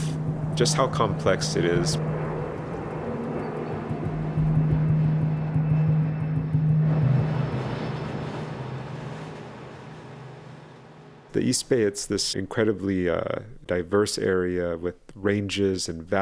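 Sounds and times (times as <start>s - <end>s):
propeller airplane droning overhead above a city: 0.0s - 11.4s
faint ambient noise: 0.0s - 16.2s
speech: 0.6s - 2.1s, 11.4s - 16.2s.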